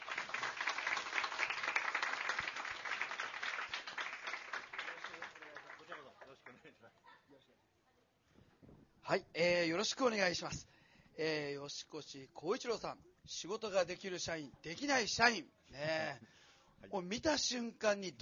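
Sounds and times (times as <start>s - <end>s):
audience applause welcoming guests on stage: 0.0s - 6.6s
speech: 9.1s - 18.2s.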